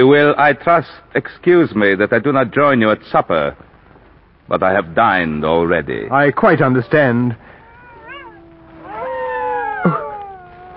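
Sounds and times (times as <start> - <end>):
speech: 0.0 - 3.7, 4.5 - 7.5, 9.8 - 10.0
chorus of wolves howling: 6.8 - 10.7.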